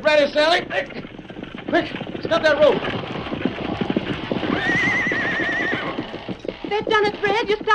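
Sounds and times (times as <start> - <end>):
speech: 0.0 - 1.0, 1.7 - 3.1, 4.6 - 5.5, 6.7 - 7.7
hoofbeats of runaway horses clopping: 0.0 - 7.7.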